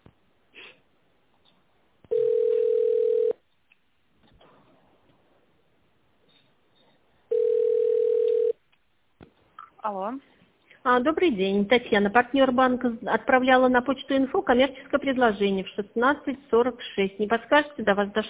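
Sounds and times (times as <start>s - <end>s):
telephone line tones while a call is transferred: 2.1s - 3.4s, 7.3s - 8.6s
speech: 9.9s - 18.2s.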